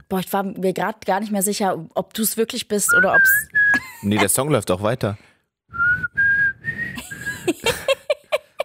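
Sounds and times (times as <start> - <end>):
speech: 0.1 - 5.3
person whistling a melody: 2.9 - 3.9, 5.7 - 7.5
laughter: 3.8 - 4.5, 7.0 - 8.6.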